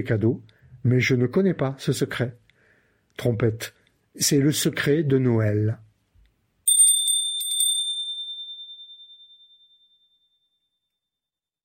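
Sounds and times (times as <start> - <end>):
speech: 0.0 - 2.4, 3.2 - 5.9
door chime ringing at a home: 6.7 - 10.2.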